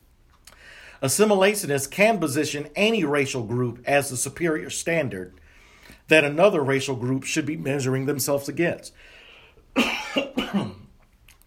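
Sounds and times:
faint breathing: 0.5s - 1.0s, 5.4s - 6.1s, 8.9s - 9.7s
speech: 1.0s - 5.4s, 6.1s - 9.2s
harsh raspy coughing: 9.7s - 10.9s.

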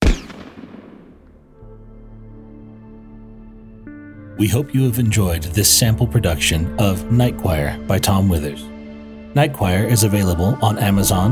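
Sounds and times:
gunshot with short decay: 0.0s - 1.2s
speech: 4.4s - 8.7s, 9.3s - 11.3s.

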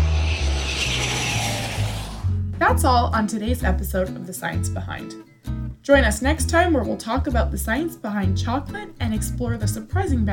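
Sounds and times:
airplane engine roaring overhead: 0.0s - 2.4s
speech: 2.7s - 10.3s.

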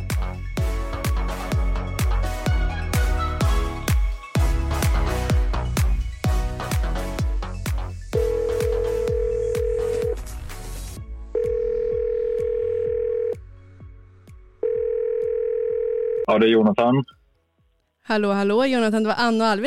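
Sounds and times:
rhythmic music thumping: 0.0s - 11.1s
telephone ringback tone: 8.2s - 10.2s, 11.4s - 13.4s, 14.6s - 16.3s
speech: 16.4s - 17.2s, 18.1s - 19.6s.

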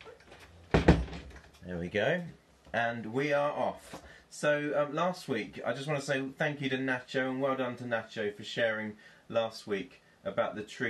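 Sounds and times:
door swinging shut with solid thuds: 0.7s - 1.3s
door rattle: 0.7s - 1.6s
speech: 1.7s - 10.8s.

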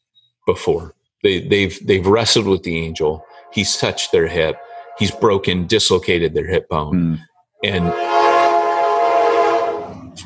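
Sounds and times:
speech: 0.5s - 8.3s
passing train horn blaring: 2.0s - 6.2s, 7.6s - 10.2s.

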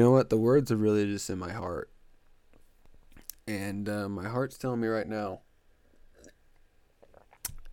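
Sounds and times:
speech: 0.0s - 2.0s, 3.5s - 5.5s
person sipping water: 5.9s - 7.7s
swallowing click: 7.1s - 7.7s.

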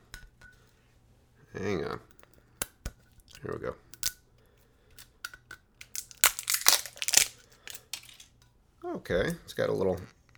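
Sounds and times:
speech: 1.6s - 2.1s, 3.5s - 3.8s, 9.1s - 10.2s
plastic shrink wrap crackling and tearing off a bottle: 5.0s - 8.3s.

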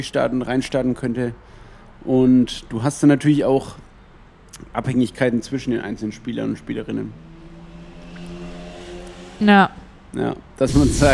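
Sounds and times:
speech: 0.0s - 3.8s, 4.6s - 7.3s, 9.4s - 11.1s
motorcycle engine droning outside as it passes: 5.6s - 11.1s.

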